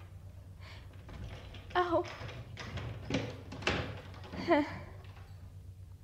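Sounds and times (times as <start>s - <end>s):
door creaking as it swings open: 0.9s - 5.5s
speech: 1.9s - 2.4s, 4.5s - 4.8s.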